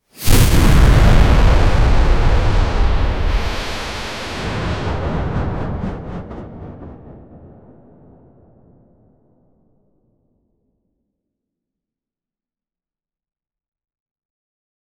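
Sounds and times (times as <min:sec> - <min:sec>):
wizard tower explosion: 0:00.1 - 0:09.0.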